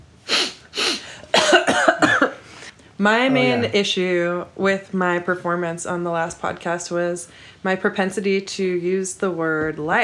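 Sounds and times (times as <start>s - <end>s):
person coughing dry coughs and rough rapid bursts: 0.3s - 2.4s, 3.2s - 3.7s
speech: 3.0s - 10.0s.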